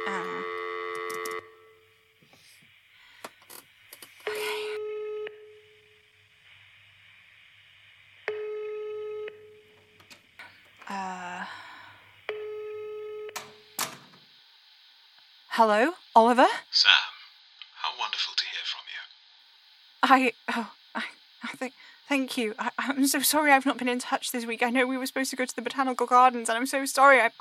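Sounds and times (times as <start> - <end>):
ringing tones on a telephone line: 0.0 - 1.9, 4.3 - 5.8, 8.3 - 9.8, 12.3 - 13.7
speech: 15.6 - 17.1, 20.1 - 27.3.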